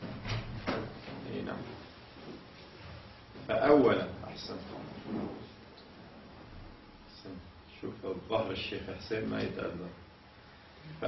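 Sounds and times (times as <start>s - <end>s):
wooden door opening with knocks and a scraping rattle: 0.0s - 1.3s
murmur of room noise: 0.0s - 11.0s
speech: 3.5s - 4.6s, 8.0s - 10.1s.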